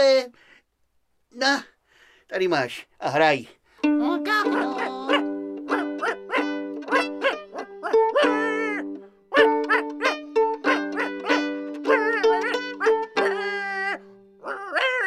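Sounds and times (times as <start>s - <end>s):
speech: 0.0s - 0.5s, 1.3s - 1.7s, 2.3s - 5.2s
dog yelping during a stage performance in a concert show: 4.5s - 15.0s.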